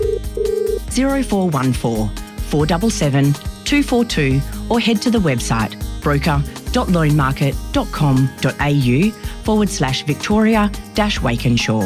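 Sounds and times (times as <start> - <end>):
telephone ringing with two electronic tones: 0.0 - 0.8
speech: 1.0 - 11.8.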